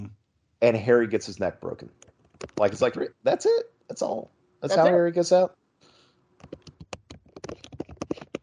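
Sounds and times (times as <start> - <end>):
speech: 0.6 - 5.6
fast typing on a computer keyboard: 6.4 - 8.4.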